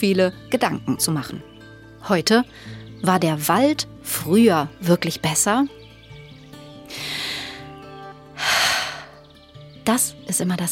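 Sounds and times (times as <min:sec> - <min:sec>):
speech: 0:00.0 - 0:05.8, 0:09.8 - 0:10.7
deep inhales through the nose on walking into a forest: 0:06.9 - 0:07.8, 0:08.4 - 0:09.3.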